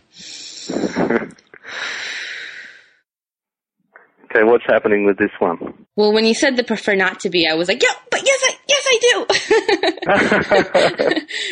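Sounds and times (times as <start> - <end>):
person taking a deep breath: 0.1 - 3.0, 10.7 - 11.4
short voiced snort-like sound: 0.2 - 1.4
speech: 1.1 - 1.4, 4.4 - 8.4, 9.0 - 11.4
laughter: 9.3 - 11.4.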